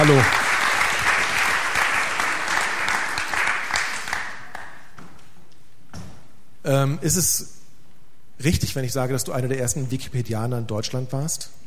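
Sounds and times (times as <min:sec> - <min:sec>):
speech: 0:00.0 - 0:00.4, 0:06.7 - 0:07.6, 0:08.4 - 0:11.6
audience applause: 0:00.0 - 0:04.9.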